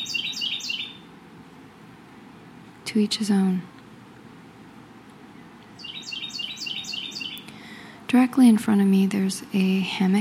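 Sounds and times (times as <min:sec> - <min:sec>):
shrill bird call: 0:00.0 - 0:01.1, 0:05.8 - 0:07.5
faint outdoor hum: 0:00.0 - 0:10.1
speech: 0:02.9 - 0:03.8, 0:08.2 - 0:10.1.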